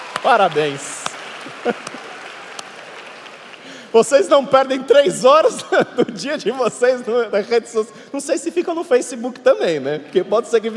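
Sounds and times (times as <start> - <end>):
audience applause in a room full of people: 0.0 - 4.6
speech: 0.2 - 2.1, 3.9 - 10.7
laughter: 1.4 - 2.1.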